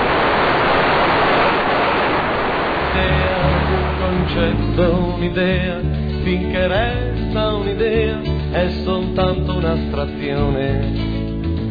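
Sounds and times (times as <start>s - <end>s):
sea waves breaking on shore: 0.0s - 4.4s
speech: 4.3s - 11.1s.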